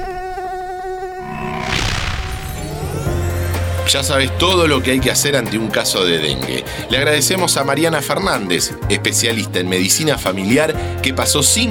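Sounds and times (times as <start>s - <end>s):
Aedes aegypti mosquito whine: 1.0s - 3.9s
loud whooshing burst: 1.2s - 4.2s
speech: 3.9s - 11.6s.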